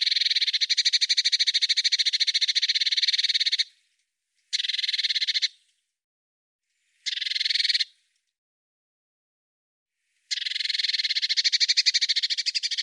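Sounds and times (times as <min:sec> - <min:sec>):
Eurasian blue tit buzzy pulsed churring scold calls: 0:00.0 - 0:03.7, 0:04.5 - 0:05.6, 0:07.0 - 0:08.0, 0:10.3 - 0:12.8.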